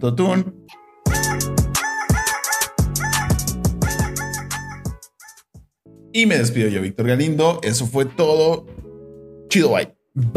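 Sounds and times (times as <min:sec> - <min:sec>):
speech: 0:00.0 - 0:00.7, 0:06.1 - 0:08.8, 0:09.5 - 0:10.3
rooster crowing: 0:01.1 - 0:05.5.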